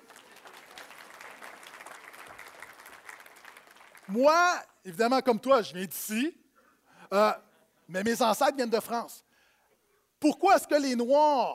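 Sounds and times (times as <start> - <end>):
live audience applauding: 0.0 - 4.2
speech: 4.1 - 6.4, 7.1 - 9.3, 10.2 - 11.5.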